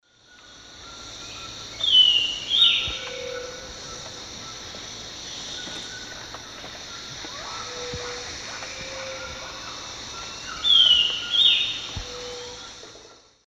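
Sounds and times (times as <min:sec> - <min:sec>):
Corythopis torquatus song: 0:00.2 - 0:12.8.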